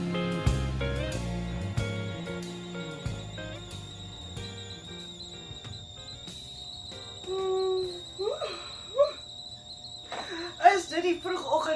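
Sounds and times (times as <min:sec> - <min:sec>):
kettle whistling: 0:00.0 - 0:11.7
people talking: 0:07.2 - 0:09.2, 0:10.2 - 0:11.7.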